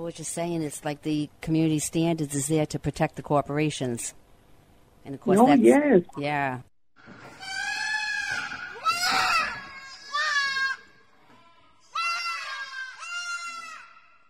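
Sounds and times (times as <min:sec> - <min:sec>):
speech: 0:00.0 - 0:04.2, 0:05.0 - 0:06.7
lambs screaming and bleating: 0:07.3 - 0:10.9, 0:11.8 - 0:14.0.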